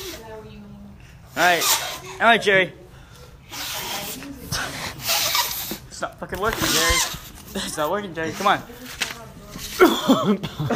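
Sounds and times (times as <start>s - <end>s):
speech: 1.4s - 2.8s, 6.0s - 9.0s, 9.6s - 10.7s
raspy hoarse coughs: 9.8s - 10.7s.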